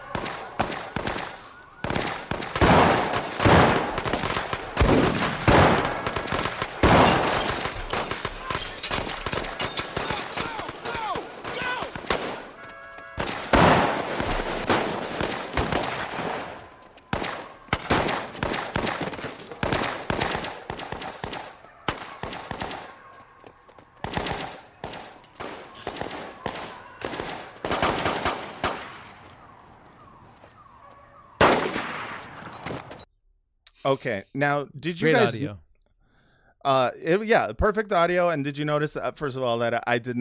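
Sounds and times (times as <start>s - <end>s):
gunfire in a TV shootout scene: 0.0s - 12.6s, 13.2s - 23.1s, 24.0s - 29.2s, 31.4s - 32.9s
speech: 33.9s - 35.6s, 36.6s - 40.1s.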